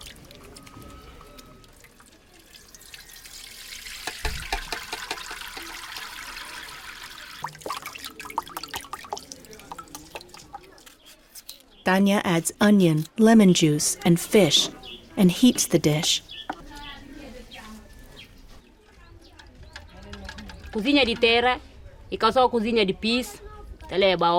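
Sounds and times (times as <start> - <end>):
water dripping: 0.0 - 11.0
speech: 11.9 - 16.3, 20.8 - 24.3.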